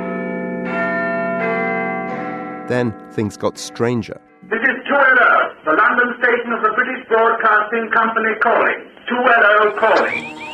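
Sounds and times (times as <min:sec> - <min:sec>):
large clock tower bell chiming: 0:00.0 - 0:03.4
speech: 0:02.7 - 0:10.4.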